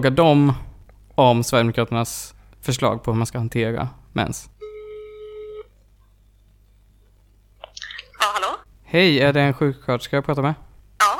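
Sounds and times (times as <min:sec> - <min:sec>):
speech: 0:00.0 - 0:00.6, 0:01.2 - 0:04.5, 0:08.3 - 0:10.7
buzzy telephone ring tone during a call to nurses: 0:04.6 - 0:05.7.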